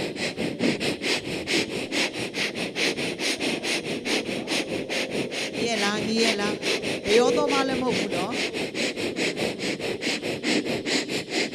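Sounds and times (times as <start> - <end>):
quick rhythmic sniffing through the nose: 0.0 - 5.6, 6.5 - 11.5
speech: 6.2 - 8.6.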